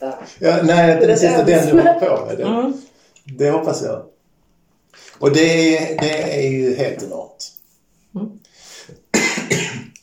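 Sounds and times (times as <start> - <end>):
speech: 0.0 - 4.1, 5.0 - 9.9
person clearing throat: 9.1 - 10.0
person coughing sharply: 9.1 - 10.0.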